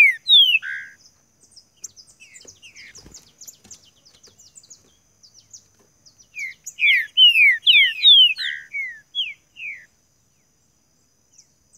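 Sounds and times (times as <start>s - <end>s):
green-winged saltator song of descending whistled notes: 6.4s - 9.9s.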